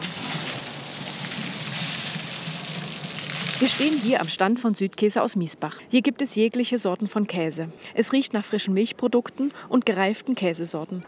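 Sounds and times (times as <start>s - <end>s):
water splashing from fountain figures: 0.0s - 4.4s
speech: 3.6s - 11.0s.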